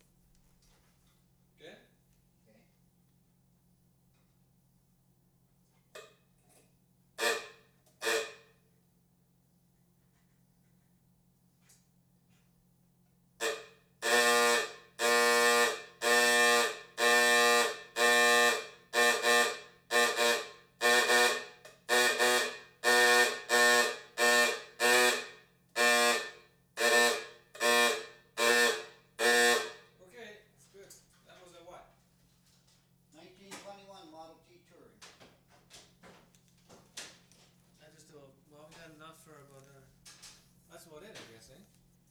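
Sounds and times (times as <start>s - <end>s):
1921 Model T antique car horns: 6.0s - 8.7s, 13.4s - 30.1s.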